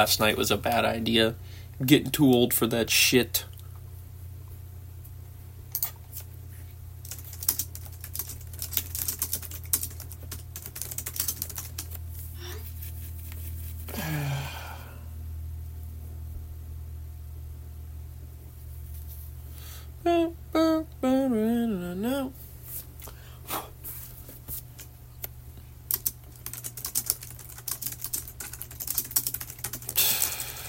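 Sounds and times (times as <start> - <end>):
speech: 0.0 - 3.5
low hum: 3.4 - 23.7
fast typing on a computer keyboard: 7.0 - 12.0, 25.9 - 30.5
sigh-like breath: 13.9 - 15.2.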